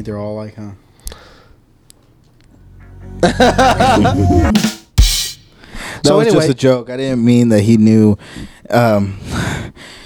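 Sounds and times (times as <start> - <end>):
speech: 0.0 - 0.9, 3.1 - 4.7, 6.0 - 10.0
laughter: 3.2 - 4.5
heavy breathing: 5.5 - 6.0, 8.2 - 10.0.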